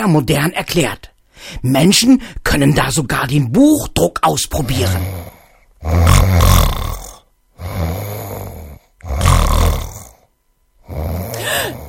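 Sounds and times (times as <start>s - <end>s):
speech: 0.0s - 6.7s
loud rumbling snoring of a bear character: 4.6s - 11.8s.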